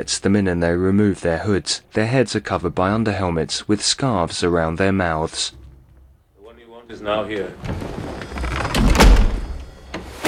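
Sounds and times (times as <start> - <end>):
speech: 0.0 - 5.6, 6.9 - 8.3
door pushed shut with a dull heavy thud: 7.6 - 10.2.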